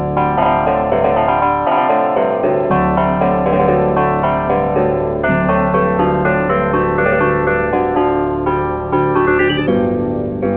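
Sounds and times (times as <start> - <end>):
penta harp: 0.2 - 10.4.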